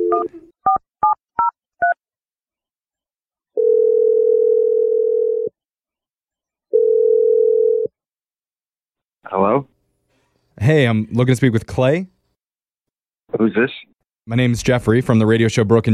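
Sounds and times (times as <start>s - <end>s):
speech: 0.1s - 0.9s, 10.6s - 12.2s, 13.4s - 15.8s
telephone dial tone: 3.6s - 5.5s, 6.8s - 7.9s.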